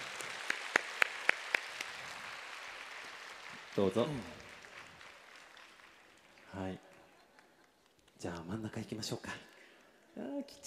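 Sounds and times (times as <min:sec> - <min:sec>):
audience applause with sharp evenly spaced claps: 0:00.0 - 0:07.5
speech: 0:03.8 - 0:04.4, 0:06.6 - 0:06.8, 0:08.2 - 0:09.6, 0:10.2 - 0:10.6.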